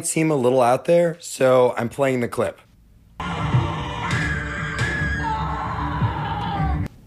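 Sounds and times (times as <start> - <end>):
speech: 0.0 - 3.4
people screaming a greeting over phones: 3.2 - 6.9.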